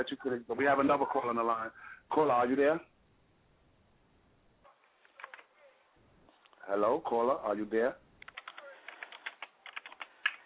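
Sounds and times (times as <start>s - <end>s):
speech: 0.0s - 2.9s, 6.6s - 8.0s
typing on a computer keyboard: 5.1s - 5.5s, 8.2s - 10.4s.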